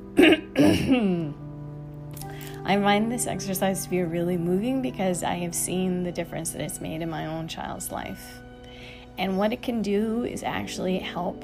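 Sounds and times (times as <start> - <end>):
person clearing throat with rough gravelly bursts: 0.2 - 1.4
speech: 0.8 - 1.4, 2.6 - 8.4, 9.2 - 11.4.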